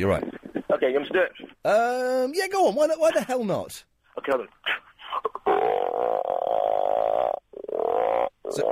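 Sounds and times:
speech: 0.0 - 4.8, 8.5 - 8.7
person imitating a frog croaking with their voice: 5.1 - 8.7.

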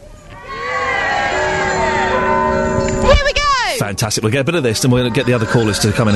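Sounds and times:
several bells ringing together: 1.0 - 3.8, 4.8 - 6.1
speech: 4.0 - 6.1.

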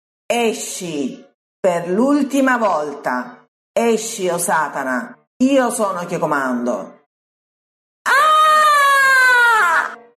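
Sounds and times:
speech: 0.3 - 7.0
long agonized scream: 8.1 - 10.1.

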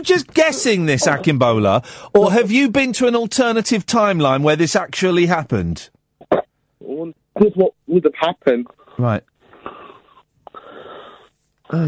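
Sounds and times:
speech: 0.0 - 6.0, 7.0 - 9.3
heavy rasping breathing near the microphone: 1.8 - 2.2, 8.7 - 11.8.

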